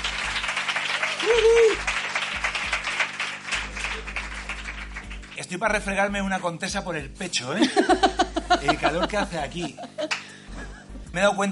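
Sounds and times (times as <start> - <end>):
crowd applauding: 0.0 - 5.5
vocal whoop from the crowd: 0.9 - 1.9
speech: 1.2 - 1.9, 5.5 - 10.2, 11.1 - 11.5
laughter: 7.6 - 11.0.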